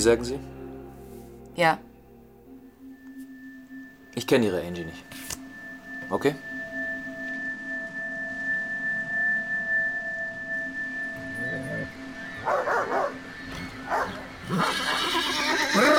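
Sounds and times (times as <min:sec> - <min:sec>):
speech: 0:00.0 - 0:00.6, 0:01.6 - 0:01.9, 0:04.2 - 0:05.2, 0:06.1 - 0:06.6
droning hum: 0:00.5 - 0:15.0
dog barking on a beach: 0:12.4 - 0:13.2, 0:13.9 - 0:14.2.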